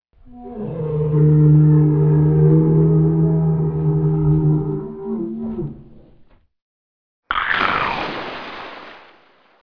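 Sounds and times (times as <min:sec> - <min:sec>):
animal roar: 0:00.3 - 0:05.8.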